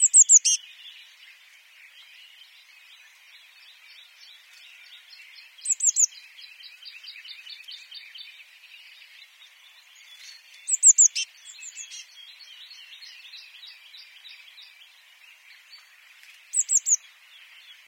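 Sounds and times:
Eurasian blue tit Cyanistes caeruleus tsee-tsee-tsee calls: 0.0s - 0.6s, 5.6s - 6.2s, 10.2s - 14.0s, 16.5s - 17.1s
soft bird twittering: 0.0s - 17.8s.

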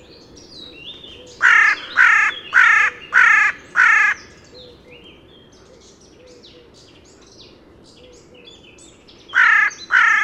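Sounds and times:
Corvus corone carrion crow cawing: 1.3s - 4.6s, 9.4s - 10.2s.

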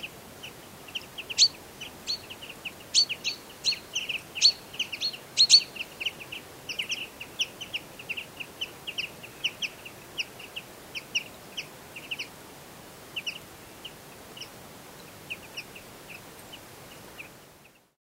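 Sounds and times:
Common chaffinch Fringilla coelebs calls: 0.0s - 12.3s, 13.2s - 17.9s
faint background hiss: 0.0s - 17.9s.

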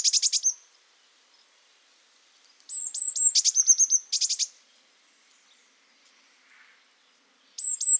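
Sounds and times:
Eurasian blue tit Cyanistes caeruleus calling with piping notes and buzzy trills: 0.0s - 0.6s, 2.7s - 4.6s, 7.6s - 7.9s.

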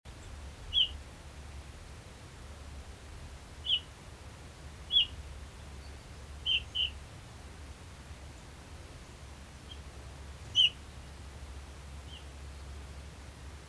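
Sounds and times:
faint steady low hum: 0.1s - 13.6s
Eurasian bullfinch piping whistle calls: 0.2s - 1.0s, 3.6s - 4.0s, 4.8s - 7.0s, 8.4s - 11.3s, 12.0s - 12.4s.

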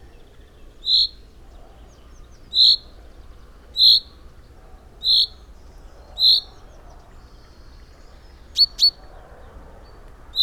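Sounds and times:
common chaffinch Fringilla coelebs calls: 0.8s - 1.2s, 2.5s - 2.9s, 3.8s - 4.1s, 5.0s - 5.4s.

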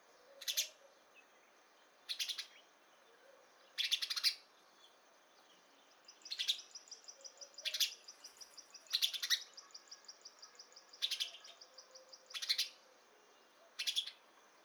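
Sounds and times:
house sparrow Passer domesticus giving loud buzzy chirps: 3.8s - 4.4s, 6.2s - 12.8s, 13.7s - 14.2s.

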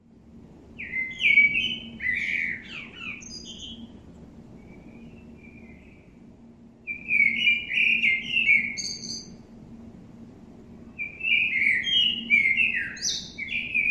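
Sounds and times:
Common blackbird Turdus merula singing a fluted warble: 0.8s - 4.0s, 4.6s - 6.2s, 6.9s - 9.4s, 10.9s - 13.8s.

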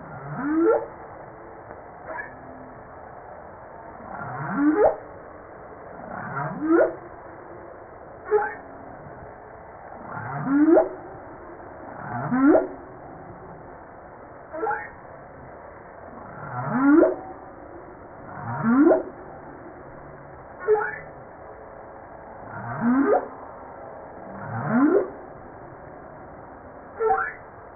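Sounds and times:
low background noise: 0.0s - 27.7s
humpback whale song: 0.1s - 1.0s, 2.0s - 2.6s, 4.0s - 5.0s, 6.0s - 7.1s, 8.2s - 9.1s, 10.0s - 11.2s, 11.9s - 13.4s, 14.5s - 15.0s, 16.1s - 21.4s, 22.5s - 23.4s, 24.2s - 25.2s, 26.9s - 27.6s.

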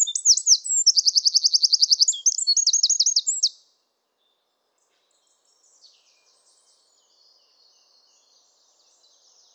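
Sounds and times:
Eurasian wren (Troglodytes troglodytes) song: 0.0s - 3.6s.

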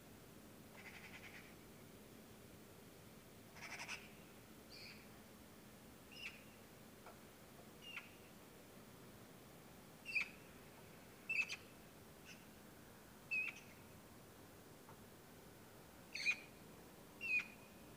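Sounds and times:
faint Eurasian magpie Pica pica calls: 0.7s - 1.6s, 3.5s - 5.1s, 6.1s - 6.6s, 7.8s - 8.3s, 10.0s - 10.5s, 11.3s - 12.5s, 13.3s - 13.8s, 16.1s - 16.6s, 17.2s - 17.8s.

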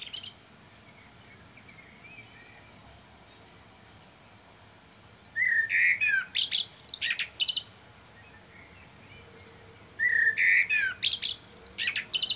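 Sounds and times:
common blackbird whistled phrase breaking into scratchy high twittering: 0.0s - 2.7s, 5.4s - 9.2s, 9.9s - 12.3s.

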